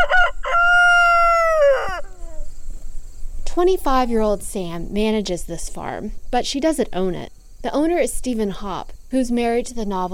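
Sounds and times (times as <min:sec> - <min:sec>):
rooster crowing on a farm: 0:00.0 - 0:02.5
speech: 0:03.6 - 0:10.1.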